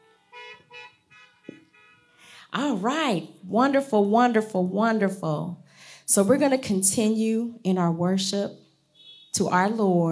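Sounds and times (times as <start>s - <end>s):
car horns honking in parking lot: 0.0s - 2.5s, 8.9s - 9.4s
speech: 2.5s - 8.6s, 9.3s - 10.1s.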